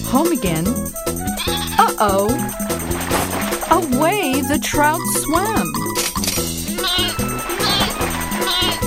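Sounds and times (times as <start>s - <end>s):
speech: 0.1s - 2.7s, 3.7s - 6.1s
lamb bleating: 1.3s - 1.9s, 6.7s - 8.8s.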